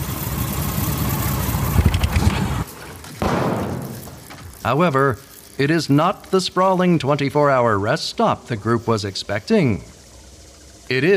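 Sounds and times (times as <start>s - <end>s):
motorcycle with a sidecar engine idling and revving: 0.0s - 2.3s, 3.2s - 5.9s
speech: 4.6s - 9.9s, 10.9s - 11.1s.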